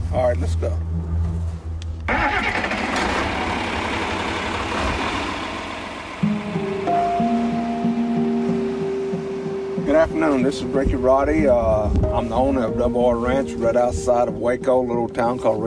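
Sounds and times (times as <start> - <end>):
heavy tractor engine rumbling and idling: 0.0 - 15.6
speech: 0.1 - 1.6, 10.0 - 15.6
heavy tractor engine cranking and starting: 2.0 - 6.6.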